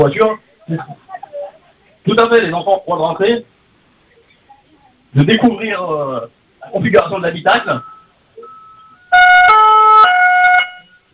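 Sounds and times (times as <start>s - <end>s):
speech: 0.0s - 1.0s, 2.1s - 3.5s, 5.1s - 7.9s
faint tone: 7.6s - 9.6s
gendarmerie car siren: 7.8s - 11.0s.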